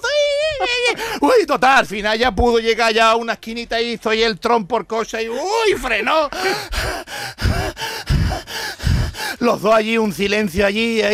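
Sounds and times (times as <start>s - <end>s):
frightened heavy breathing and gasping: 0.9s - 1.3s, 6.3s - 9.6s
speech: 0.9s - 8.7s, 9.4s - 11.1s.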